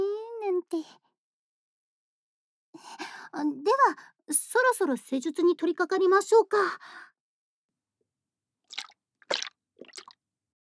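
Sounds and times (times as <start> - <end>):
speech: 0.6 - 1.0, 2.8 - 7.1
thick gooey liquid squishing on fingertips: 8.7 - 10.1.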